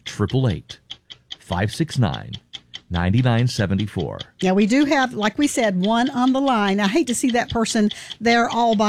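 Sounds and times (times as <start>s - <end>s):
clock ticking: 0.0s - 8.8s
speech: 0.2s - 0.8s, 1.5s - 8.8s.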